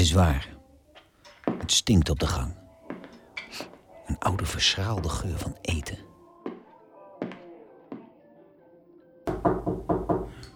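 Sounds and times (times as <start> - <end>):
speech: 0.0 - 0.5, 1.7 - 2.6, 3.5 - 6.1
slow knocking on a door: 9.3 - 10.3.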